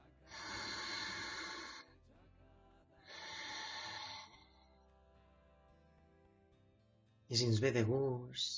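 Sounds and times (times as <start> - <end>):
deep breathing in and out: 0.0 - 2.0, 3.0 - 4.9
speech: 7.3 - 8.5.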